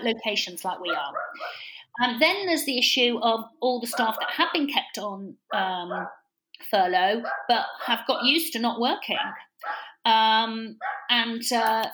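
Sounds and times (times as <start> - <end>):
speech: 0.0 - 11.9
dog barking in loud drawn-out whining bursts: 0.8 - 1.6, 3.9 - 4.5, 5.5 - 6.2, 7.2 - 8.4, 9.2 - 10.0, 10.8 - 11.1.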